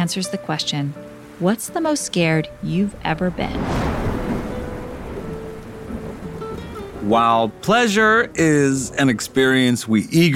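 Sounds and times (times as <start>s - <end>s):
speech: 0.0s - 4.0s, 7.0s - 10.3s
steady rain pouring down: 1.0s - 10.3s
deep continuous rumble of thunder: 1.9s - 9.4s.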